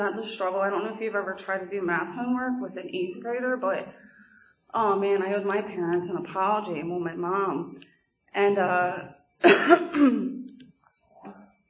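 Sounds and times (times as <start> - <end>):
speech: 0.0 - 4.1, 4.7 - 10.4
nervous cough: 9.4 - 10.3.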